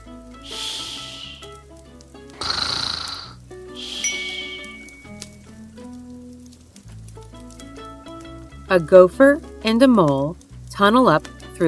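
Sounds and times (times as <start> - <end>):
soft music: 0.0 - 11.6
sleeping bear snoring: 2.4 - 3.4
speech: 8.7 - 11.6.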